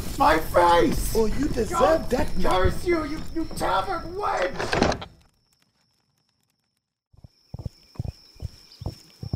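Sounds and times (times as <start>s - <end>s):
speech: 0.2s - 5.1s
horse hoofbeats galloping away: 7.1s - 9.3s.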